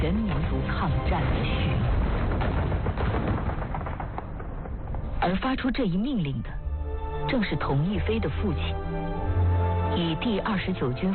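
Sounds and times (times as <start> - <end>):
speech: 0.0 - 1.7, 5.3 - 6.6, 7.3 - 8.9, 9.9 - 11.1
low rumbling backdrop: 0.0 - 11.1
dense continuous gunfire: 1.2 - 5.6.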